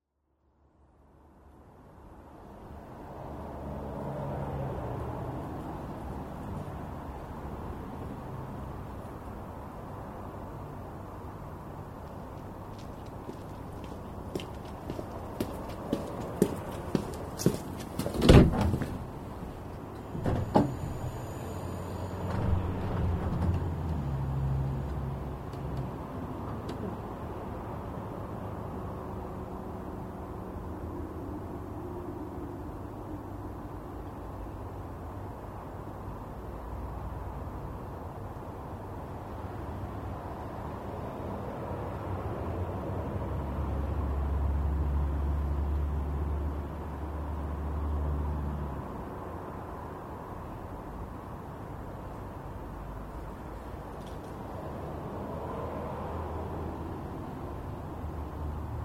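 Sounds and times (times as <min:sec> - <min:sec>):
cars passing: 0:02.0 - 0:58.8
footsteps walking: 0:12.3 - 0:19.0.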